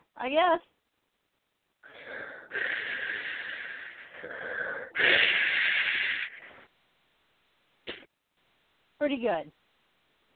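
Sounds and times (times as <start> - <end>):
speech: 0.2 - 0.8, 9.0 - 9.6
person imitating mechanical respirator heavy breathing: 1.8 - 6.7.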